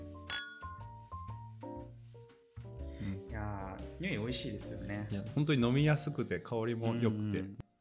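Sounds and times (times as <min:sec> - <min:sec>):
beer glasses clinking in a toast: 0:00.2 - 0:00.8
speech: 0:03.4 - 0:07.6.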